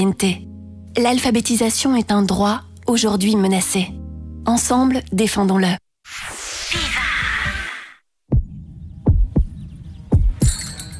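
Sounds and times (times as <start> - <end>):
speech: 0.0 - 6.9
heartbeat sound effect in lub-dub pairs: 8.3 - 10.6.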